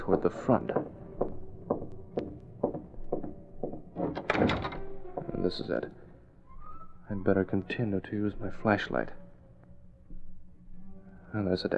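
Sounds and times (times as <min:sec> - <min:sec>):
speech: 0:00.0 - 0:01.0, 0:05.4 - 0:06.0, 0:07.1 - 0:09.2, 0:11.3 - 0:11.7
skeleton key working an apartment service door open: 0:00.0 - 0:06.0
rattling clatter of the service door latch and door: 0:03.8 - 0:05.7.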